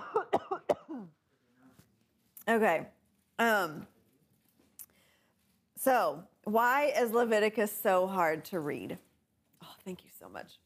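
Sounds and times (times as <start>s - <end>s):
person with a tickle in the throat coughing into a microphone: 0.0s - 1.2s
speech: 2.5s - 3.9s, 5.8s - 9.1s, 9.8s - 10.6s.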